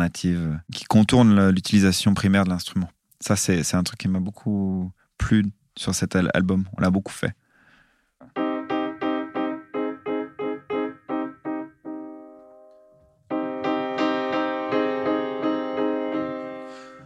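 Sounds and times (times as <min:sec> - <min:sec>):
speech: 0:00.0 - 0:07.4
classical piano playing repeated chords: 0:08.2 - 0:17.0.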